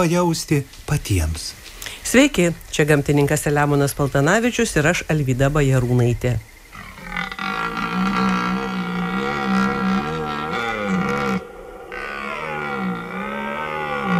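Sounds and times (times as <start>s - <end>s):
speech: 0.0s - 6.5s
red deer stags bellowing during the rut: 6.7s - 14.1s.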